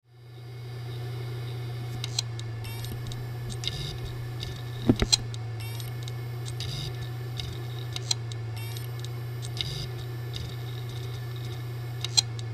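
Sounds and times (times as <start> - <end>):
hard disk drive sound: 0.0 - 12.5.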